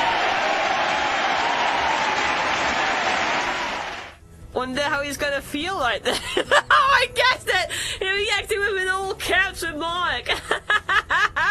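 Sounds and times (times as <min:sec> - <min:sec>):
dense round of applause from many hands: 0:00.0 - 0:04.2
speech: 0:04.6 - 0:10.6.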